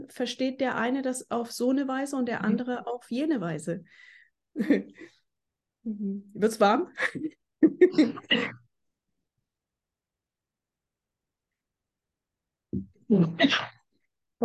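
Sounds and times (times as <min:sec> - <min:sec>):
speech: 0:00.1 - 0:05.2, 0:05.8 - 0:08.6, 0:13.1 - 0:13.8
person coughing: 0:07.9 - 0:08.6, 0:13.1 - 0:13.8
throat clearing: 0:12.8 - 0:13.8.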